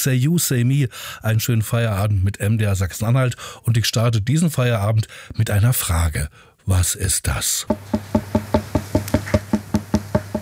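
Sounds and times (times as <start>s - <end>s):
speech: 0.0s - 8.4s
bright hollow knocking: 7.7s - 10.4s.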